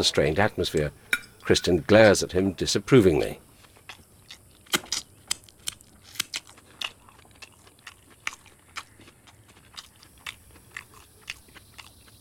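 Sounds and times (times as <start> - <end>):
speech: 0.0 - 3.4
crunchy munching and wet chewing of food: 3.4 - 12.1.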